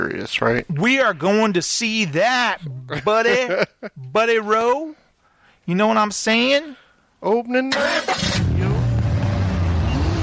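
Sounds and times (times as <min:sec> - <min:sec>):
speech: 0:00.1 - 0:05.0, 0:05.7 - 0:08.4
laughter: 0:02.6 - 0:04.1
car engine revving: 0:07.8 - 0:10.2.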